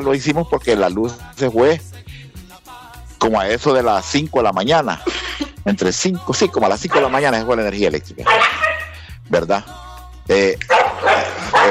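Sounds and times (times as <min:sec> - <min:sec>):
speech: 0:00.0 - 0:01.9, 0:03.2 - 0:08.4, 0:09.3 - 0:11.7
dog barking as fighting dogs are chased out: 0:06.9 - 0:09.0, 0:10.7 - 0:11.7.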